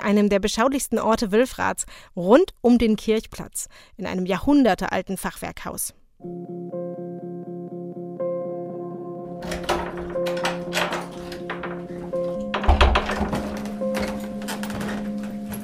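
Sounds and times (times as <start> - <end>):
speech: 0.0 - 6.8
footsteps on a creaking wooden staircase in a centuries-old half-timbered house: 9.4 - 15.6.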